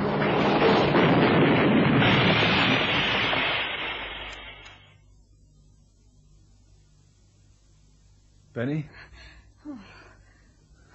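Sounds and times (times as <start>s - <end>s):
car crashing with roaring grinding noise: 0.0s - 4.7s
speech: 8.6s - 9.9s.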